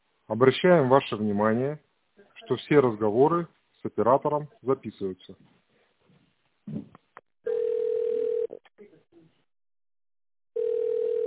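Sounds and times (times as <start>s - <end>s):
speech: 0.3s - 1.9s, 2.5s - 5.6s
telephone line tone after a dropped call: 7.5s - 8.6s, 10.6s - 11.2s.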